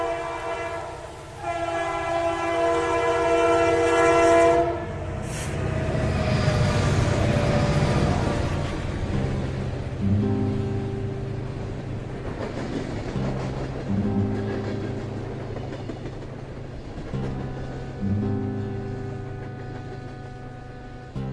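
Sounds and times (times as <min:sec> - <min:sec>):
train horn sounding a long sustained chord: 0:00.0 - 0:09.2, 0:14.0 - 0:21.2
train rumbling past: 0:00.0 - 0:21.3.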